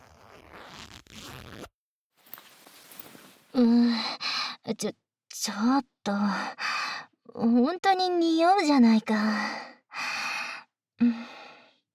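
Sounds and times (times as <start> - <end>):
trouser zipper rasping down: 0.0 - 1.7
speech: 3.6 - 4.1, 4.7 - 6.6, 7.3 - 9.7, 11.0 - 11.3
breathy vocal gasps or sighs: 9.4 - 11.8.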